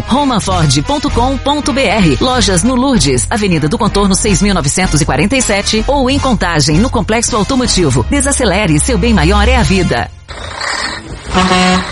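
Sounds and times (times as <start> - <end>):
speech: 0.1 - 10.6, 11.4 - 11.9
moving truck engine rumbling: 8.8 - 11.9
road noise: 10.2 - 11.9
moving truck horn honking: 11.2 - 11.9.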